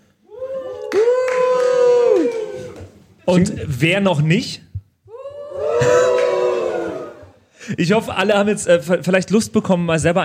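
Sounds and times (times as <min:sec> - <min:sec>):
audience members whooping and cheering: 0:00.3 - 0:03.0, 0:05.1 - 0:07.4
speech: 0:03.3 - 0:04.7, 0:07.8 - 0:10.2.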